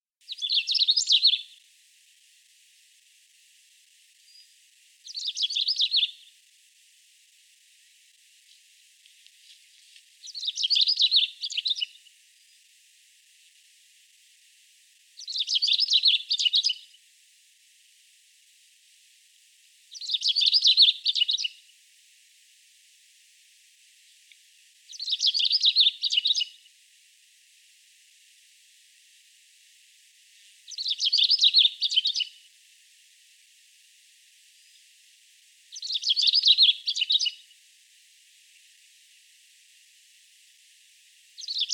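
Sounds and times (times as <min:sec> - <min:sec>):
long-tailed rosefinch voice: 0:00.3 - 0:01.5, 0:05.1 - 0:06.2, 0:10.2 - 0:12.0, 0:15.2 - 0:16.8, 0:20.0 - 0:21.5, 0:24.9 - 0:26.5, 0:30.7 - 0:32.3, 0:35.8 - 0:37.4, 0:41.4 - 0:41.7.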